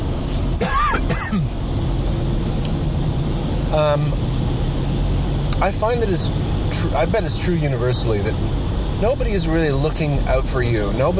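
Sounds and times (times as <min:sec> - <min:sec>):
steady low engine-like rumble: 0:00.0 - 0:11.1
person coughing from a throat tickle: 0:00.6 - 0:01.5
throat clearing: 0:00.6 - 0:01.5
speech: 0:01.3 - 0:01.6, 0:03.7 - 0:04.4, 0:05.6 - 0:11.1.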